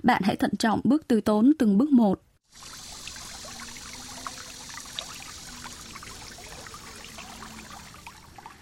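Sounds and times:
speech: 0.1 - 2.8
babbling stream splashing over stones: 2.5 - 8.6.

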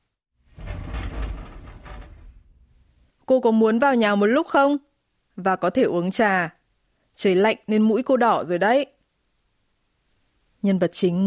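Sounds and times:
balcony door sliding open with grinding scrape: 0.5 - 3.0
speech: 3.3 - 6.6, 7.2 - 8.9, 10.6 - 11.2.

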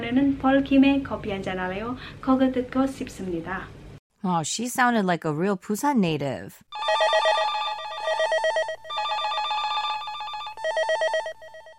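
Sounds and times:
speech: 0.1 - 7.2
telephone ringing in rapid electronic trills: 6.7 - 11.7.

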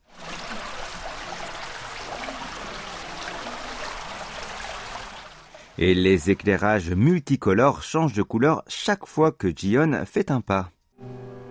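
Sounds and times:
underground stream flowing in a cave: 0.0 - 6.9
speech: 5.8 - 11.1.

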